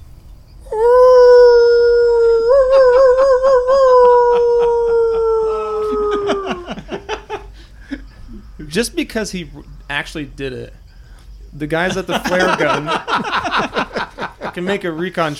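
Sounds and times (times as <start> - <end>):
person imitating a dog howl: 0.7 - 6.8
laughter: 2.6 - 8.1, 11.8 - 14.8
speech: 8.7 - 10.8, 11.6 - 13.9, 14.6 - 15.3.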